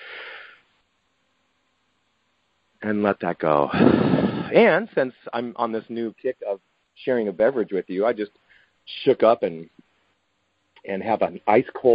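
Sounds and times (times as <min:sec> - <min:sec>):
deep breath in: 0:00.0 - 0:00.6, 0:03.7 - 0:04.6
speech: 0:02.8 - 0:09.8, 0:10.8 - 0:11.9.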